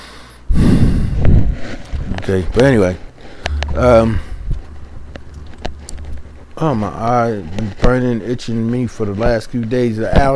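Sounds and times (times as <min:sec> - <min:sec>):
heavy labored breathing: 0:00.0 - 0:02.1, 0:03.1 - 0:06.6
speech: 0:02.3 - 0:03.1, 0:03.7 - 0:04.3, 0:06.6 - 0:10.3.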